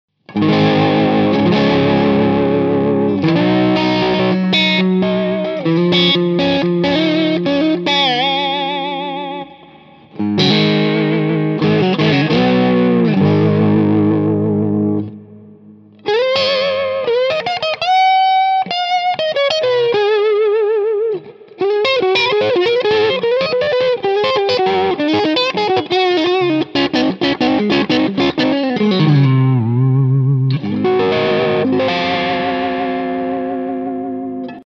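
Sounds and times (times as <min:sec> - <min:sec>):
vintage crunch electric guitar playing rhythm and lead: 0:00.2 - 0:34.6.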